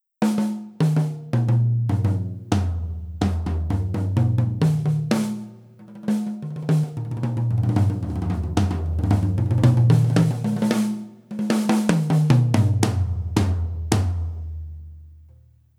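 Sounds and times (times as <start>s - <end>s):
rock tom drums: 0.2s - 15.1s.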